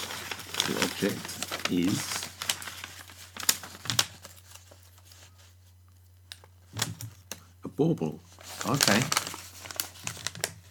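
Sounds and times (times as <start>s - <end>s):
paper envelope being opened: 0.0s - 5.2s, 8.3s - 10.7s
speech: 0.7s - 2.2s, 7.8s - 9.2s.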